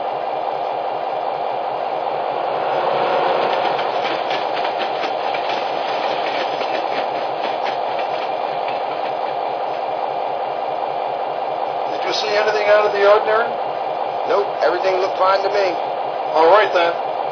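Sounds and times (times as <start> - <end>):
passenger train rushing past: 0.0 - 17.3
wheels clacking over rail joints: 3.1 - 9.8
speech: 12.8 - 13.6, 14.3 - 17.0.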